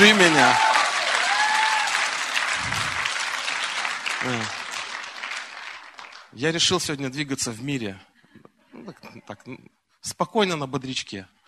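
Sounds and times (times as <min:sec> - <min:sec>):
speech: 0:00.0 - 0:00.8, 0:04.2 - 0:04.6, 0:06.4 - 0:08.1, 0:08.8 - 0:11.4
large audience applause: 0:00.0 - 0:06.4.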